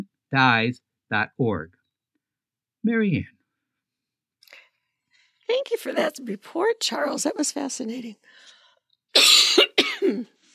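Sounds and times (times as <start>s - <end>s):
speech: 0.3s - 1.8s, 2.8s - 3.4s, 5.5s - 8.5s, 10.1s - 10.4s
person coughing with a throaty tail: 9.2s - 10.4s.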